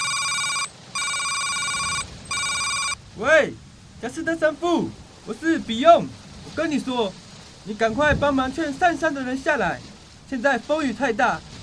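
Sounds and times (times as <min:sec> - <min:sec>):
telephone ringing with a bright electronic trill: 0:00.0 - 0:03.0
speech: 0:03.2 - 0:11.5.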